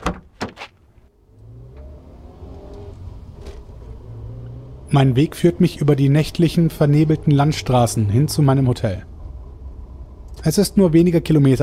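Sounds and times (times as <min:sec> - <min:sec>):
car door and handling clatters: 0:00.0 - 0:00.8
speech: 0:04.9 - 0:09.1, 0:10.4 - 0:11.6.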